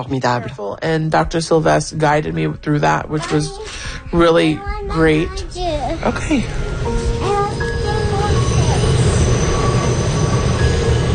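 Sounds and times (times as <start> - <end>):
speech: 0.0 - 6.6
New York subway train running on rails from Brooklyn to Manhattan: 5.6 - 11.1
subway train wheels squealing and whining: 6.6 - 11.1.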